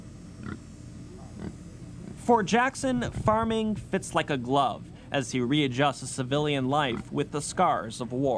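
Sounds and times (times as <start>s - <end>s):
low rumble of outdoor noise: 0.0s - 8.3s
pigs oinking on a farm in Dublin: 0.4s - 0.6s, 1.2s - 2.2s, 6.8s - 7.2s
speech: 2.3s - 8.3s.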